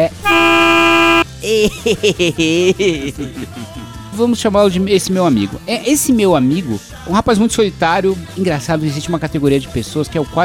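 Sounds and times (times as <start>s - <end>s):
speech: 0.0s - 0.7s, 1.4s - 10.4s
censor bleep over a spoken name: 0.0s - 1.2s.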